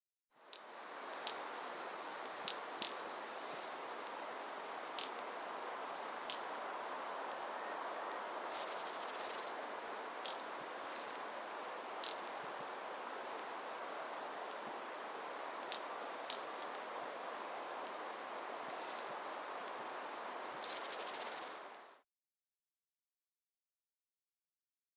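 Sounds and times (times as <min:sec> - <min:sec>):
Hazel-fronted pygmy-tyrant Pseudotriccus simplex calling in the Andes: 0:00.9 - 0:21.8.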